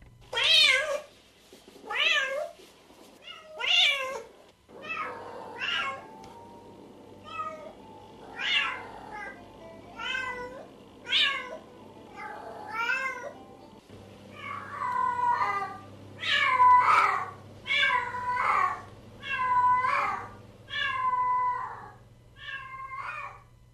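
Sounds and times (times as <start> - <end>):
low constant hum: 0.0 - 23.7
Asian hybrid cats meowing: 3.2 - 6.2, 7.2 - 13.4, 14.3 - 23.4.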